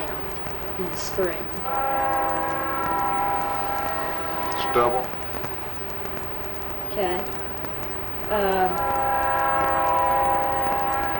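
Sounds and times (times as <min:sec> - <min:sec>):
train horn blaring a multi-tone chord: 0:00.0 - 0:05.3, 0:08.3 - 0:11.1
passing train rumbling: 0:00.0 - 0:11.1
speech: 0:00.8 - 0:02.6, 0:04.7 - 0:05.2, 0:07.0 - 0:07.4, 0:08.3 - 0:09.6.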